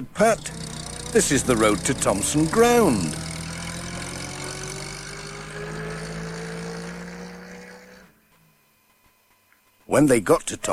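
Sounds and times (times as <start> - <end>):
speech: 0.0 - 3.2, 10.0 - 10.7
post bus engine idling in a farmyard: 0.0 - 3.5.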